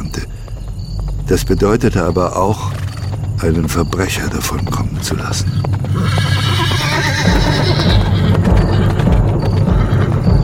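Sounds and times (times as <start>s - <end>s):
horse hooves pounding in a fast gallop down a street: 0.0s - 10.4s
speech: 1.3s - 6.6s
riderless horse running in panic whinnying: 5.8s - 10.4s.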